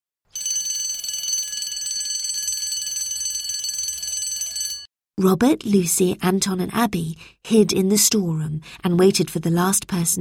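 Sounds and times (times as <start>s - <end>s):
loud electric school bell ringing: 0.4s - 4.9s
speech: 5.2s - 10.1s.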